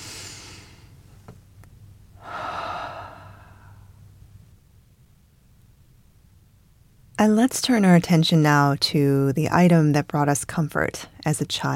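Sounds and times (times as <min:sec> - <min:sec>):
slow soft breath taken during a guided meditation: 0:00.0 - 0:01.0, 0:02.2 - 0:04.0
speech: 0:07.2 - 0:11.7.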